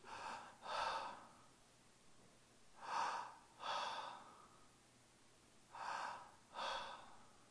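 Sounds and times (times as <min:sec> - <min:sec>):
man at a pulpit breathing slowly in and out: 0:00.0 - 0:01.6, 0:02.7 - 0:04.9, 0:05.6 - 0:07.4.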